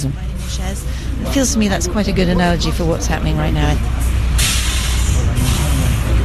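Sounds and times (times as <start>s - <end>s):
speech: 0.0s - 4.1s
large bus engine idling: 0.0s - 6.2s
voices chattering: 0.0s - 6.2s
bus air brake hiss: 4.4s - 6.1s.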